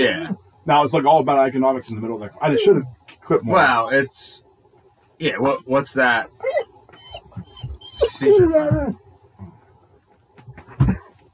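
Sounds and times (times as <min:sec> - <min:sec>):
speech: 0:00.0 - 0:04.4, 0:05.2 - 0:06.6, 0:08.0 - 0:09.5
dog whining with yips and grunts: 0:02.3 - 0:02.9, 0:06.2 - 0:09.0.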